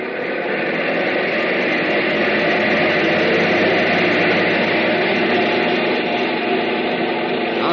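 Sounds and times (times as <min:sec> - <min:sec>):
aircraft engine revving to maximum RPM: 0:00.0 - 0:07.7.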